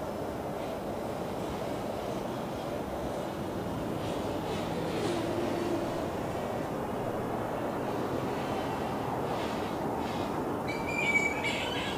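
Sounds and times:
traffic: 0.0 - 11.9
flying fox colony in mangroves at dusk: 9.3 - 11.9.

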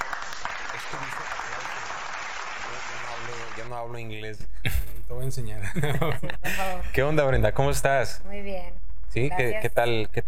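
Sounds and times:
crowd applause sound effect welcoming a guest: 0.0 - 3.8
speech: 3.6 - 10.2
laughter: 5.6 - 6.8.

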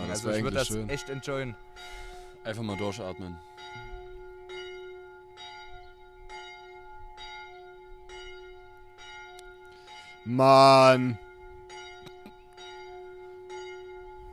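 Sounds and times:
large bell tolling: 0.0 - 14.3
speech: 0.2 - 3.9, 10.3 - 11.3.

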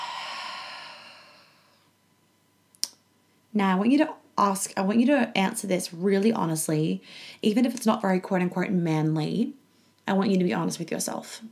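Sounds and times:
deep breath let out slowly during a guided breathing pause: 0.0 - 1.9
speech: 3.6 - 11.4.

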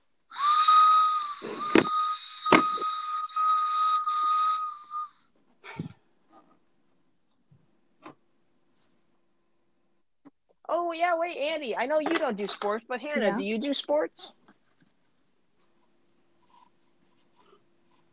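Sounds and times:
toy train whistle blowing: 0.3 - 5.3
speech: 10.9 - 14.4.

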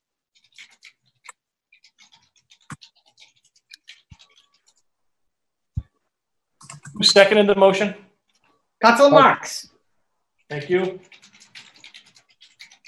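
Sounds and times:
typing on a keyboard: 0.4 - 4.8, 6.6 - 7.1, 10.5 - 12.8
speech: 7.0 - 8.0, 8.8 - 9.7, 10.5 - 11.1.

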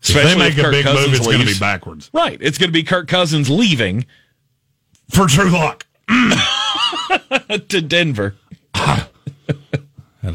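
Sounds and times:
speech: 0.2 - 4.2, 5.1 - 9.6
person coughing: 6.1 - 6.6, 8.5 - 9.8.

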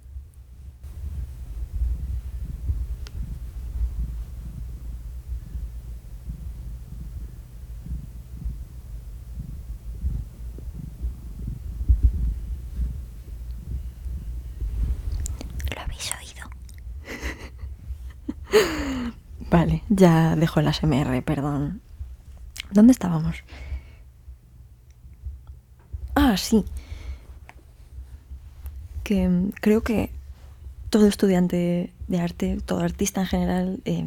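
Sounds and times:
rustling and handling noise: 0.0 - 34.0
cat purring close to the microphone: 0.8 - 22.4
speech: 18.6 - 18.8, 19.5 - 21.9, 22.6 - 23.7, 26.2 - 26.8, 29.1 - 30.2, 30.9 - 34.0.

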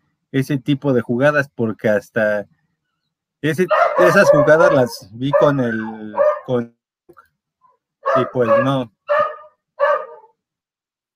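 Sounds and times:
speech: 0.3 - 2.6, 3.4 - 7.2, 8.2 - 9.2
small dog barking in high-pitched yaps: 3.7 - 6.5, 8.1 - 10.4.

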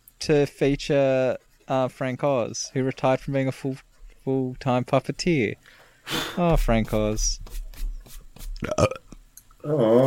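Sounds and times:
speech: 0.2 - 7.6, 8.6 - 9.0, 9.6 - 10.0
loud burp: 8.6 - 10.0.

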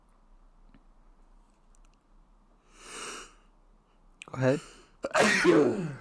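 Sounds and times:
speech: 4.4 - 5.9
person sneezing: 5.0 - 5.9.

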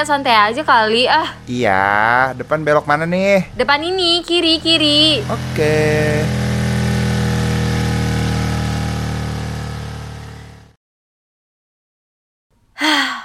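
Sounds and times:
speech: 0.0 - 6.5
motorcycle engine droning while being ridden: 0.0 - 10.8
person sighing: 12.8 - 13.2.

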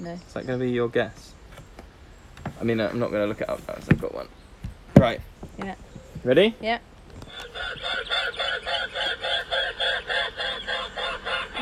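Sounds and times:
speech: 0.0 - 1.4, 2.6 - 4.4, 5.0 - 10.0
Mute Swan calling in a played recording: 7.2 - 11.5.

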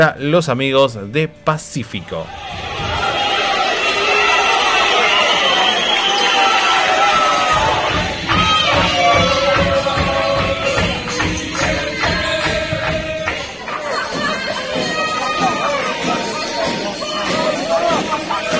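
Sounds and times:
speech: 0.0 - 2.7
spectators cheering and shouting in the stands at futsal match: 2.0 - 18.5
laughter: 2.3 - 18.5.

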